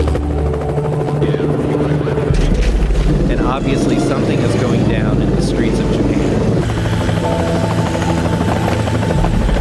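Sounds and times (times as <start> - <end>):
helicopter rotor chopping overhead above a street in Japan: 0.0 - 9.5
speech: 3.6 - 6.0.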